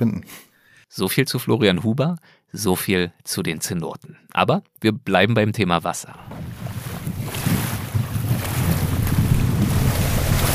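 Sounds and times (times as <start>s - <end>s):
speech: 0.0s - 6.6s
gusting wind: 6.3s - 10.5s
small motorboat engine rumbling across open water in a biosphere reserve in Quintana Roo: 6.3s - 10.5s.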